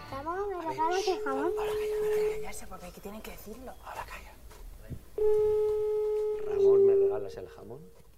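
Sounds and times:
speech: 0:00.6 - 0:05.9, 0:06.5 - 0:08.0
telephone line ringing tone of an unanswered call: 0:00.7 - 0:02.7, 0:05.2 - 0:07.9.

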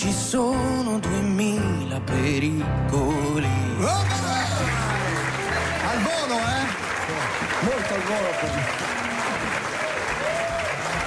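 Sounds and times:
speech: 0:00.0 - 0:04.4, 0:07.6 - 0:09.0
audience applauding: 0:04.0 - 0:11.0.

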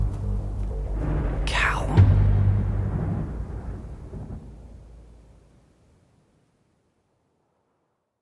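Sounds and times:
tonal sound: 0:00.0 - 0:05.4
thunder of an approaching storm rumbling: 0:00.0 - 0:07.8.

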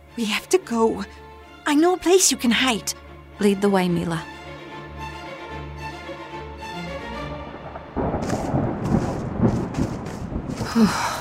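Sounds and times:
speech: 0:00.2 - 0:04.3, 0:10.8 - 0:11.1
deep rolling rumble of thunder of an approaching storm: 0:07.2 - 0:11.1
hiss like rain: 0:07.9 - 0:11.1.

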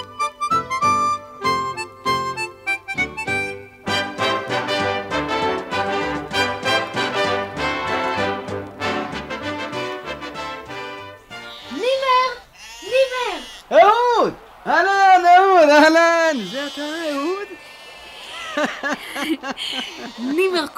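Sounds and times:
rhythmic instrumental music: 0:00.0 - 0:12.0
sheep bleating from a flock of returning Bedouins on a stormy winter day: 0:11.3 - 0:14.7, 0:15.7 - 0:18.5, 0:19.6 - 0:20.7
laughter: 0:14.0 - 0:20.7
speech: 0:19.4 - 0:20.7.

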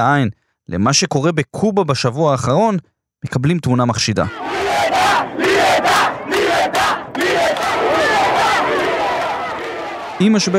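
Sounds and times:
speech: 0:00.0 - 0:04.5, 0:10.2 - 0:10.5
large street protest crowd chanting: 0:04.3 - 0:10.5.

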